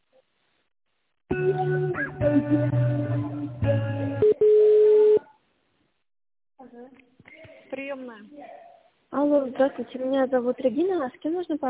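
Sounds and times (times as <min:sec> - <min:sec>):
speech: 0:01.6 - 0:02.8, 0:09.2 - 0:11.6
electronic telephone tones during a call transfer: 0:04.2 - 0:05.3.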